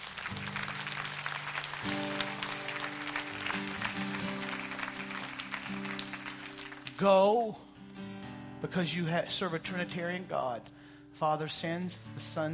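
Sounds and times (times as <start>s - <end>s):
large crowd clapping in praise of God: 0.0s - 8.2s
speech: 7.0s - 7.7s, 8.6s - 12.5s.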